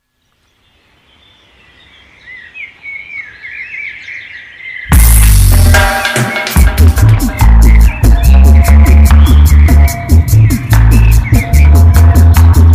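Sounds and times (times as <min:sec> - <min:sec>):
birds chirping and twittering: 0:00.0 - 0:12.7
loud dense music: 0:04.9 - 0:12.7.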